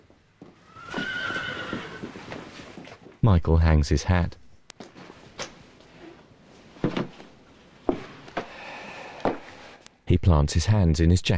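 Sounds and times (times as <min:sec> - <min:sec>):
horse whinnying in a stable: 0:00.6 - 0:02.6
speech: 0:03.2 - 0:04.4, 0:10.2 - 0:11.3.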